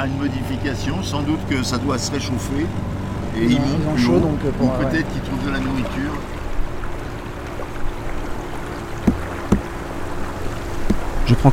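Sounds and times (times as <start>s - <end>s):
speech: 0.0s - 6.4s, 11.3s - 11.5s
boat moving on the Loire river: 0.0s - 11.5s
brief knocks or splashes: 4.8s - 11.5s.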